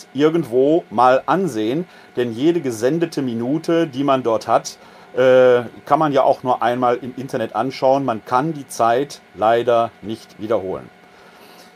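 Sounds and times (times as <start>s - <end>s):
printer whirring while calibrating: 0.0s - 11.7s
speech: 0.1s - 11.0s.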